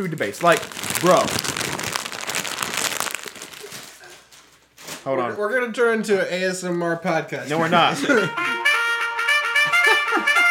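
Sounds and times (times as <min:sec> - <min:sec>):
speech: 0:00.0 - 0:01.6, 0:05.0 - 0:08.6
plastic wrapper being crumpled: 0:00.0 - 0:05.1
laughter: 0:07.6 - 0:08.9, 0:09.5 - 0:10.4.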